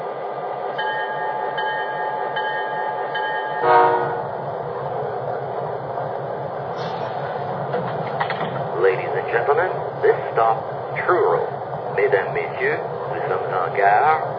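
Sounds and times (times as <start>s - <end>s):
passenger express train rolling into a station: 0.0s - 14.3s
sustained horn-like tones of a passenger train: 3.6s - 4.3s
speech: 10.4s - 14.3s.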